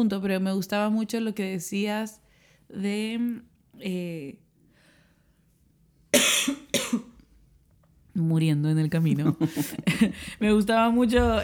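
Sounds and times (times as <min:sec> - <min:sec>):
speech: 0:00.0 - 0:04.4, 0:08.2 - 0:11.4
person coughing harshly: 0:06.2 - 0:07.2
laughter: 0:09.0 - 0:10.5.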